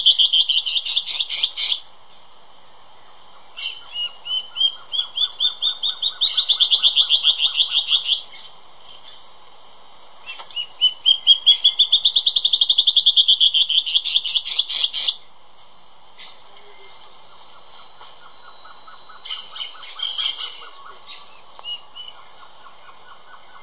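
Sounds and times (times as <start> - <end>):
Band-tailed antbird Hypocnemoides maculicauda song: 0.0 - 1.9, 3.0 - 9.4, 10.2 - 23.6.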